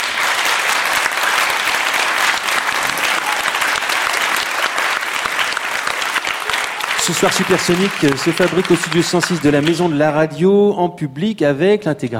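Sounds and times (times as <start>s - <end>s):
studio audience applause: 0.0s - 10.3s
speech: 7.1s - 12.1s.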